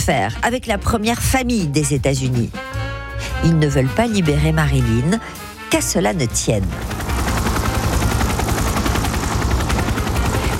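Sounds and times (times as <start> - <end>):
speech: 0.0 - 7.0
helicopter rotor thumping: 6.4 - 10.5.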